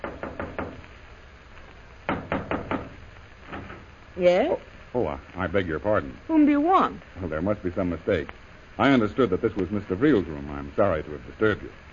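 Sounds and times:
knocking on a hotel room door: 0.0 - 0.8, 2.1 - 3.8
speech: 4.2 - 11.9.

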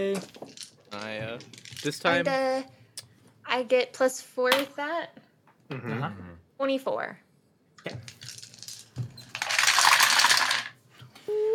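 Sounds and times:
speech: 0.0 - 2.8, 3.5 - 7.2, 7.8 - 8.2
dice rattling and tumbling across a surface for a saving throw: 0.2 - 2.3, 7.9 - 10.8.

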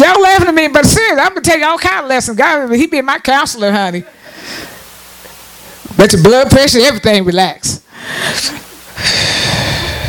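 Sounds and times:
speech: 0.7 - 4.7, 6.0 - 9.4
deep inhale and exhale: 7.9 - 10.0.

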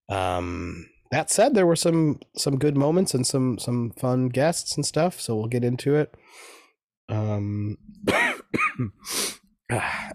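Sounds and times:
speech: 0.1 - 6.5, 7.1 - 10.1
person clearing throat with a low sustained rumble: 8.1 - 9.0
person coughing in short harsh bursts: 8.1 - 9.0.

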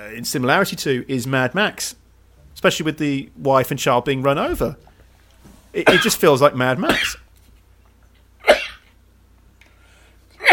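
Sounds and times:
quiet room hum: 0.0 - 10.5
speech: 0.1 - 2.0, 2.6 - 4.9, 5.7 - 7.2
sneeze or cough: 5.8 - 6.2, 6.9 - 7.2, 8.4 - 8.9, 10.4 - 10.5.

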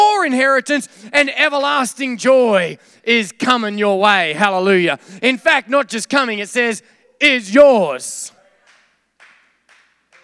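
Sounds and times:
speech: 0.2 - 8.4
crowd clapping in unison in a reverberant room: 8.6 - 10.2.

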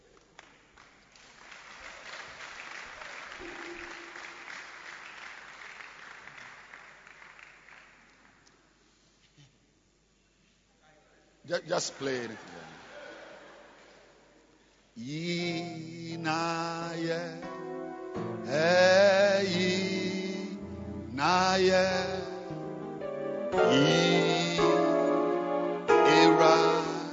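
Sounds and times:
speech: 11.5 - 12.6, 15.0 - 15.5
keyboard played clumsily with wavering sustained chords: 17.3 - 27.1.

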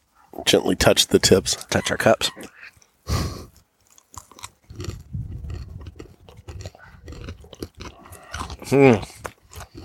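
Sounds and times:
voices murmuring: 0.3 - 3.6
speech: 0.4 - 3.3, 8.7 - 9.1
crunching and chewing a potato chip snack: 3.8 - 9.8.

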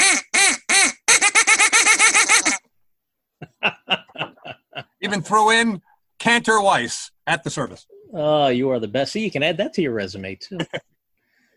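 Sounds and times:
person imitating a duck call: 0.0 - 2.6
laughter: 3.4 - 5.3, 10.5 - 10.9
speech: 5.1 - 10.9.

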